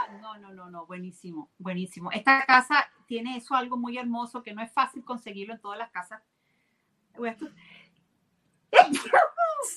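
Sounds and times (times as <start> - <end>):
speech: 0.3 - 6.3, 7.2 - 7.7, 8.7 - 9.7
sneeze: 8.8 - 9.7.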